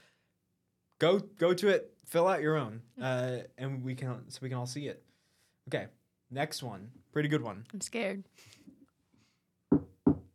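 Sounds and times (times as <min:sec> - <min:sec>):
speech: 0:01.0 - 0:08.6
knuckles knocking on wood: 0:09.7 - 0:10.3.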